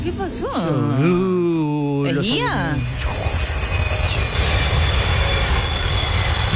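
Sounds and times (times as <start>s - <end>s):
speech: 0.0s - 4.2s
faint high whine: 0.8s - 6.5s
airplane roar sound effect: 2.2s - 6.5s.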